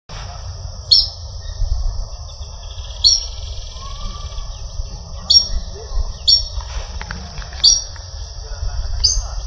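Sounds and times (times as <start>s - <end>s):
Pardirallus sanguinolentus calling at Ribera Norte: 0.3s - 9.4s.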